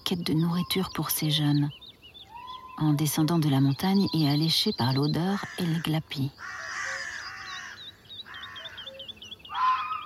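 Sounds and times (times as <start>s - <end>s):
small birds chirping in a forest in the Drôme France: 0.0s - 10.0s
speech: 0.1s - 1.8s, 2.8s - 6.6s
carrion crows giving alarm calls in a forest in the Drôme France: 5.3s - 10.0s.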